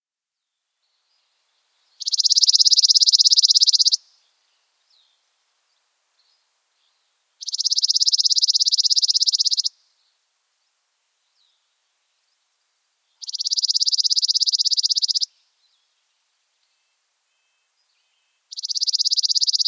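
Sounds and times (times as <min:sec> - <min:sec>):
chipping sparrow singing: 0:02.0 - 0:09.7, 0:13.2 - 0:19.6.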